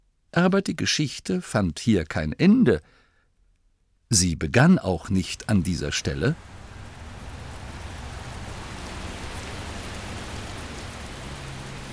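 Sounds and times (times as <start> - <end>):
speech: 0.4 - 3.0, 4.1 - 6.6
heavy rain with large splashing drops: 5.0 - 11.9.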